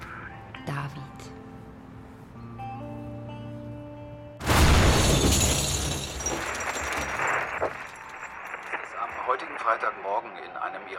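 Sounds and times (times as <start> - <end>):
speech: 0.7 - 1.1
bomb explosion in a grocery shop: 4.4 - 7.6
rumbling, shattering and crackling debris: 4.4 - 9.2.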